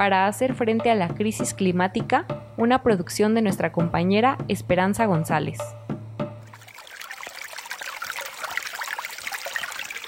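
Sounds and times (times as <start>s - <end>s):
speech: 0.0s - 5.8s
water trickling and babbling: 6.4s - 10.0s.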